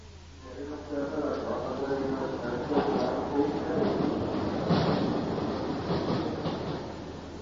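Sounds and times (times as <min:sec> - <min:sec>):
people talking: 0:00.4 - 0:05.3
train rumbling at a station platform: 0:00.4 - 0:07.4.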